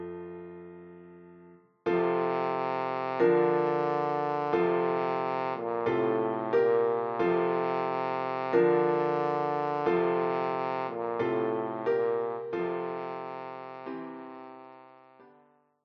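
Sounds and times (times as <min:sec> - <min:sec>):
horn playing a Christmas carol: 0:01.9 - 0:15.2.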